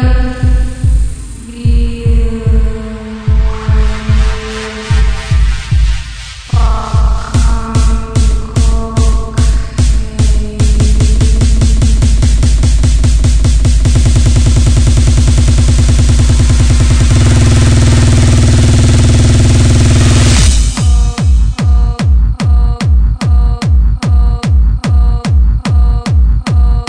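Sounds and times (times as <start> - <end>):
bass blast tone: 0.1 - 26.8.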